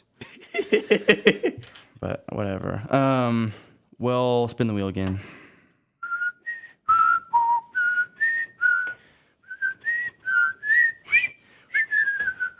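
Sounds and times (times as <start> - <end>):
laughter: 0.2 - 1.6
speech: 0.6 - 5.4
person whistling a short tune: 6.0 - 12.5.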